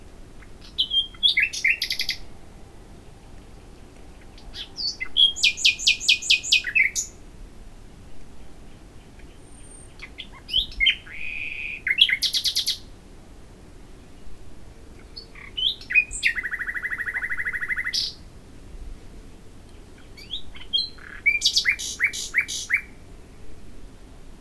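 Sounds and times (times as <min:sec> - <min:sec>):
common nightingale Luscinia megarhynchos singing: 0:00.4 - 0:07.2, 0:08.1 - 0:12.9, 0:14.9 - 0:18.2, 0:19.7 - 0:23.1.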